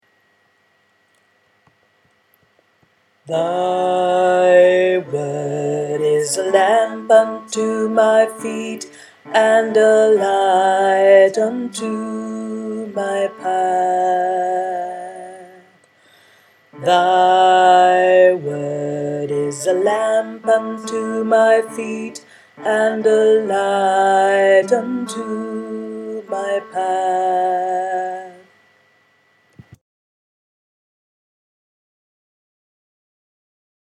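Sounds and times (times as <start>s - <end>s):
tenor singing: 3.3s - 15.8s, 16.8s - 28.5s.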